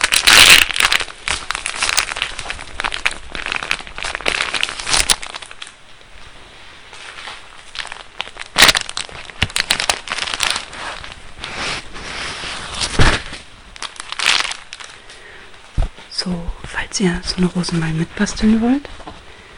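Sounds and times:
paper napkin being pulled out and unfolded: 0.0 - 15.1
speech: 17.0 - 19.0.

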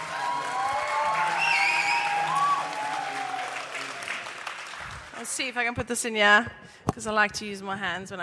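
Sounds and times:
whoops and faint cheers: 0.0 - 4.2
audience clapping to welcome a speaker: 0.0 - 5.5
speech: 5.4 - 8.2.

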